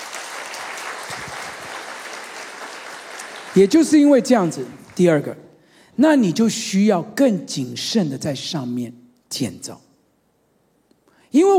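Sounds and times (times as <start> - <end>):
crowd clapping: 0.0 - 5.3
speech: 3.6 - 5.4, 6.0 - 9.9, 11.3 - 11.5.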